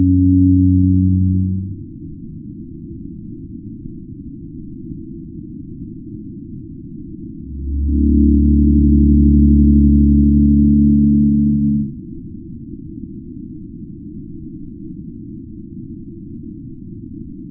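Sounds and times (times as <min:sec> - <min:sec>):
faint low noise: 0:00.0 - 0:02.1, 0:07.4 - 0:12.0
pygmy blue whale deep drone: 0:00.0 - 0:02.3, 0:07.1 - 0:13.2
pygmy blue whale low harmonic hum: 0:00.0 - 0:03.0, 0:04.8 - 0:17.5.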